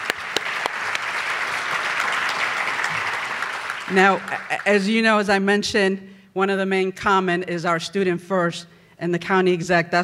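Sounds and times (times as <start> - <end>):
crowd clapping: 0.0 - 5.1
speech: 3.9 - 10.0.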